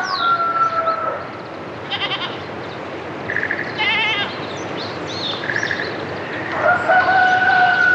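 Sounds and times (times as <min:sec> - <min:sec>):
roosters crowing in Tomi, northern Miyagi Prefecture, Japan: 0:00.0 - 0:01.3, 0:06.5 - 0:07.9
morning rural outdoor ambience in Tomi, northern Miyagi Prefecture, Japan: 0:00.0 - 0:07.9
wild birds chirping: 0:00.0 - 0:07.9
goats bleating: 0:01.9 - 0:02.4, 0:03.8 - 0:04.3.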